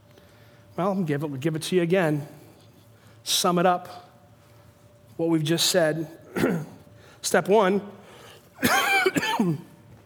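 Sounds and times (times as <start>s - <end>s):
speech: 0.8s - 2.4s, 3.2s - 4.1s, 5.2s - 8.0s, 8.6s - 9.7s
throaty raspy coughing from a person recovering from illness: 6.3s - 6.8s, 8.6s - 9.8s.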